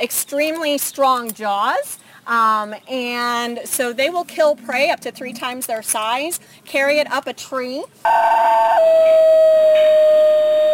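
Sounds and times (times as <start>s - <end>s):
speech: 0.0s - 10.6s
New Guinea singing dog yodeling howl: 8.2s - 10.7s.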